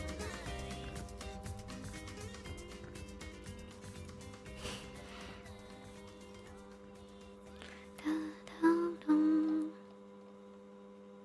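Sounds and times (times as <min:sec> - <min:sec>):
air conditioner humming: 0:00.0 - 0:11.2.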